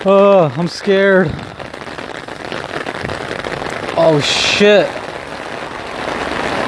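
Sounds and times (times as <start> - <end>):
speech: 0.0 - 1.6, 4.0 - 5.0
heavy rain falling outdoors: 0.0 - 6.6.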